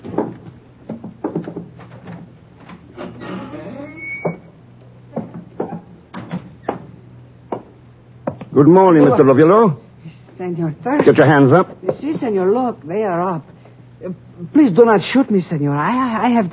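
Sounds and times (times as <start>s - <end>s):
knocking clunks and thumps: 0.0s - 3.6s, 5.1s - 8.5s, 10.8s - 12.4s
door creaking open as someone enters: 1.2s - 6.9s
speech: 8.6s - 9.8s, 10.4s - 16.5s.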